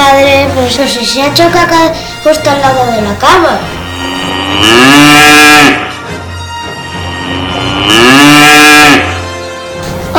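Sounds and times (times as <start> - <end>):
speech: 0.7 - 5.8
cow mooing: 3.8 - 6.0, 7.0 - 9.2.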